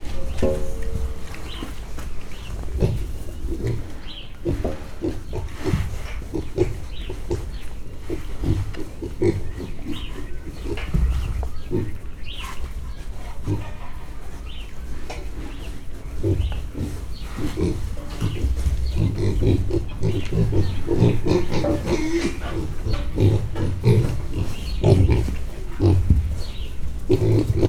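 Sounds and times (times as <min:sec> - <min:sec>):
ten-week-old Mangalica pigs making noise in Hortobágy National Park: 0:00.0 - 0:27.6.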